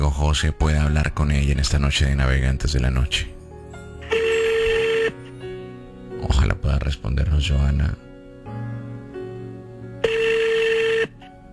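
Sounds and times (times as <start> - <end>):
speech: 0.1 - 3.4, 6.4 - 8.6
telephone ringing tone while a caller waits for an answer: 4.0 - 5.3, 10.0 - 11.2.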